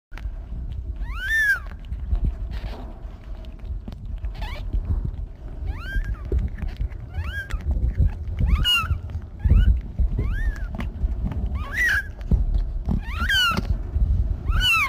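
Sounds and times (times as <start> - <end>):
steady low rumble: 0.1 - 14.8
cat meowing: 1.0 - 1.8, 4.3 - 4.8, 5.6 - 12.3, 13.0 - 13.7, 14.4 - 14.8.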